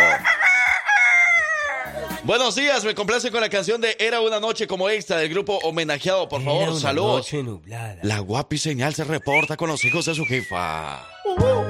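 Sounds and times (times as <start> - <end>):
rooster crowing: 0.0 - 2.1
speech: 2.3 - 11.6.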